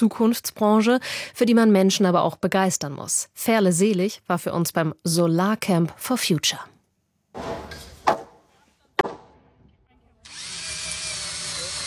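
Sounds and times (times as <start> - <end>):
speech: 0.0 - 6.7
sharp knocks: 7.4 - 8.4, 9.0 - 9.7
power drill driving screws into wood: 10.2 - 11.8.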